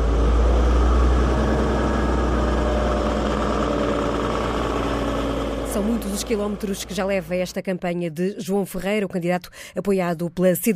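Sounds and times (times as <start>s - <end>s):
old Volga car engine rumbling while driving slowly: 0.0s - 7.6s
speech: 5.8s - 10.7s.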